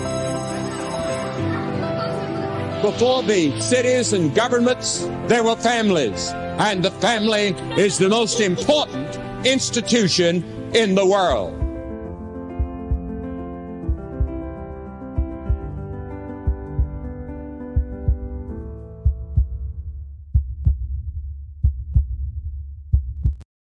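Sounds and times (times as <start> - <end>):
music in an ad: 0.0 - 22.4
speech: 2.8 - 11.6
laughter: 7.2 - 9.8
heartbeat sound effect thumping: 11.5 - 12.0, 12.6 - 13.2, 13.8 - 14.6, 15.2 - 15.8, 16.4 - 17.2, 17.8 - 23.4.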